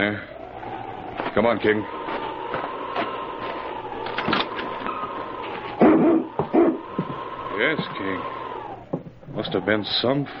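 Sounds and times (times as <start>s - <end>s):
speech: 0.0s - 0.3s, 1.3s - 2.1s, 7.6s - 8.4s, 9.3s - 10.3s
steady whining noise: 0.0s - 10.3s
faint thumps: 4.2s - 8.0s, 8.8s - 9.6s
husky dog barking: 5.8s - 6.8s.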